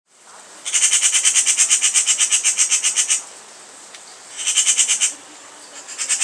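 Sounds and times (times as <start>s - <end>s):
Eurasian magpie Pica pica chattering call: 0.6s - 3.2s, 4.3s - 6.2s.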